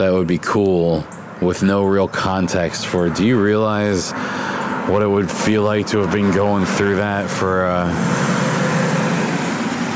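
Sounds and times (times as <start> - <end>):
speech: 0.0 - 8.4
faint low car engine rumble: 0.0 - 9.9
cars passing on a rain-soaked road: 2.9 - 9.9.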